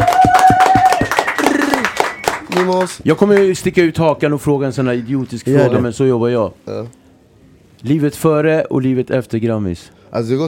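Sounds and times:
people clapping: 0.0s - 3.7s
speech: 2.6s - 7.0s, 7.8s - 10.4s.

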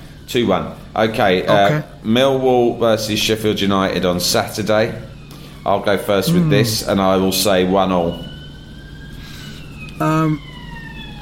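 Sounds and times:
low hum: 0.0s - 11.2s
speech: 0.3s - 8.3s, 10.0s - 10.5s
emergency vehicle siren on a city street in King's Cross: 3.6s - 11.2s.

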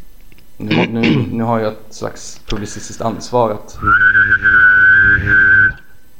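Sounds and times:
speech: 0.6s - 5.8s
person humming a low drone: 3.8s - 5.9s
person whistling: 3.8s - 6.0s.

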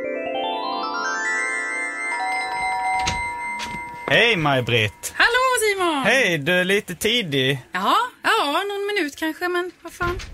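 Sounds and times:
melodic electronic doorbell chime: 0.1s - 5.8s
speech: 4.1s - 8.1s, 9.2s - 10.3s.

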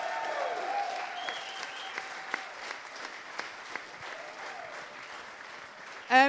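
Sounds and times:
audience applause: 0.0s - 6.2s
faint whistles from the crowd: 1.2s - 2.0s.

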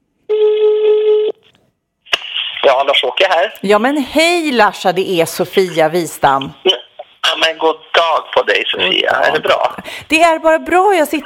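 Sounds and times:
buzzing telephone ring tone as a call is placed: 0.3s - 1.4s
speech: 2.7s - 6.8s, 7.4s - 11.2s.

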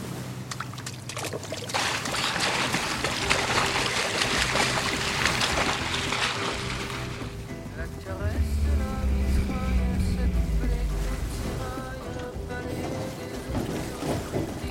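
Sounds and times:
water rushing and splashing around a lifeboat hull: 0.0s - 14.7s
lifeboat engine droning: 1.8s - 14.7s
voices: 7.8s - 14.0s.

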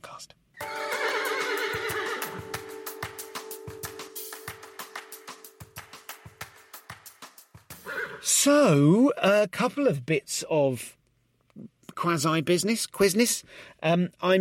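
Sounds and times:
speech: 0.2s - 0.8s, 8.4s - 11.0s, 11.6s - 14.4s
horse neighing: 0.6s - 2.4s, 7.8s - 8.3s.

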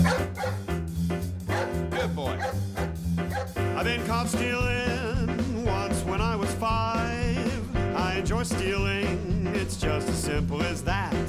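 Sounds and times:
dog barking: 0.0s - 0.7s, 1.5s - 3.6s
upbeat band music: 0.0s - 11.2s
speech: 3.8s - 5.1s.

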